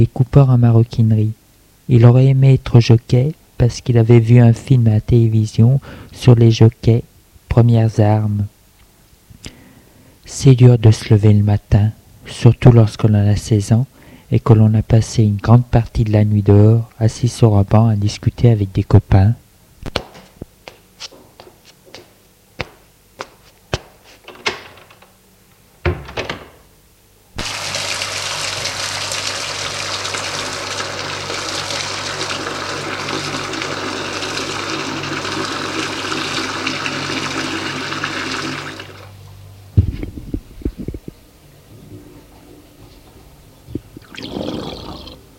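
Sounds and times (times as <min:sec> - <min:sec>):
speech: 0:00.0 - 0:08.5, 0:10.3 - 0:20.0
shower running as a 16-year-old boy showers in the morning: 0:27.4 - 0:39.1.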